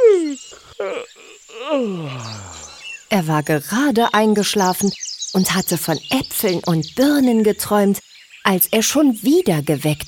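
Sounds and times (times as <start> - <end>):
person imitating a hedgehog yawning loudly: 0.0 - 2.9
speech: 0.5 - 2.4, 3.1 - 10.0.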